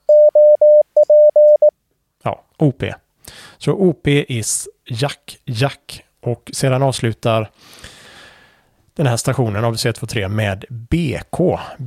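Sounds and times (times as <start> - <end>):
Morse code tone in CW: 0.0 - 1.7
speech: 2.3 - 3.0, 3.6 - 7.9, 9.0 - 11.8.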